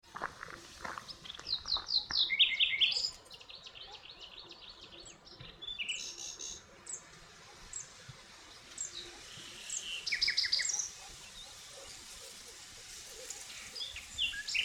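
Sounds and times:
steady background hiss: 0.0 - 14.6
common nightingale Luscinia megarhynchos singing: 1.1 - 6.6, 8.8 - 11.5.

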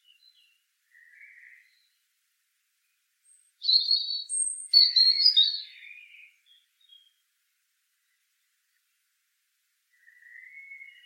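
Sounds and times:
European robin singing thin whistles and wavering warbles: 0.0 - 2.1, 2.8 - 7.2, 9.9 - 11.0.

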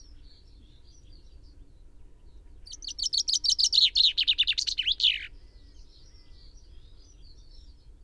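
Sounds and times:
common chaffinch Fringilla coelebs singing: 2.6 - 5.4.

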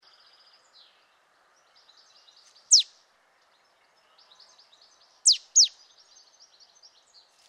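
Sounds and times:
marsh tit Poecile palustris calling: 5.2 - 5.7.

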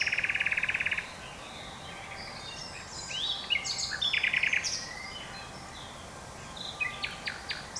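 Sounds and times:
common nightingale Luscinia megarhynchos singing: 0.0 - 7.7.

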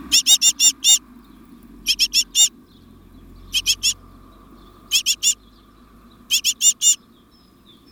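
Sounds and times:
Parus major great tit calling in harsh churring notes: 0.0 - 1.0, 1.9 - 2.5, 3.5 - 4.0, 4.9 - 5.4, 6.3 - 7.8.

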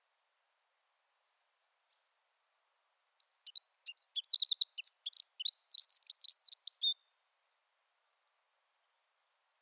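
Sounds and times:
Eurasian wren Troglodytes troglodytes song: 3.2 - 7.0.

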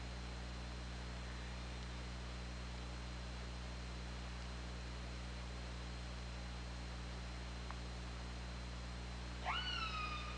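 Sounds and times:
low hum: 0.0 - 10.3
faint click: 7.6 - 7.8
orca giving a sharply rising harmonic call: 9.4 - 10.3.

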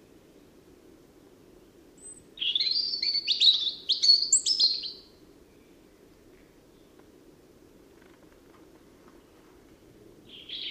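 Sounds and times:
faint steady background hum: 0.0 - 10.7
European robin Erithacus rubecula song of rapid warbling and trilled notes: 2.0 - 5.8, 10.3 - 10.7.

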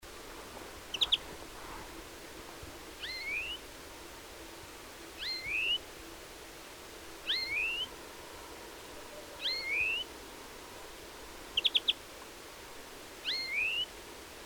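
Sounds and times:
European greenfinch Chloris chloris calling: 0.9 - 1.2, 3.0 - 3.6, 5.2 - 5.8, 7.2 - 7.9, 9.4 - 10.1, 11.6 - 12.0, 13.2 - 13.9.

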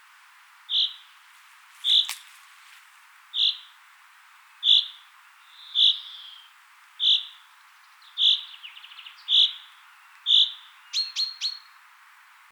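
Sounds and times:
Common chaffinch Fringilla coelebs calling with clipped high single notes: 0.7 - 1.2, 1.8 - 2.4, 3.3 - 3.8, 4.6 - 11.8.

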